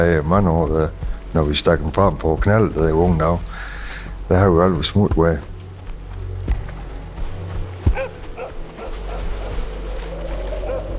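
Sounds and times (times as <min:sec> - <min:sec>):
speech: 0:00.0 - 0:05.5
police dogs barking and yipping: 0:07.9 - 0:10.9.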